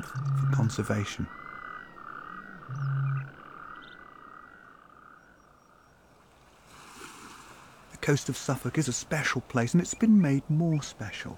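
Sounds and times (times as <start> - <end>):
speech: 0.0 - 1.4, 8.0 - 11.3
chorus of natterjack toads rasping and trilling: 0.0 - 6.0
low croak: 0.0 - 7.9.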